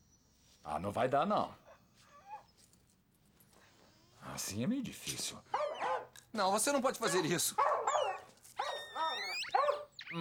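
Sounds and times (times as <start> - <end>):
speech: 0.6 - 1.6, 4.4 - 5.7, 6.3 - 8.0
dog barking and yelping in a dubbed film scene: 5.5 - 6.1, 7.0 - 10.0
dog howl-like cries: 7.6 - 9.9.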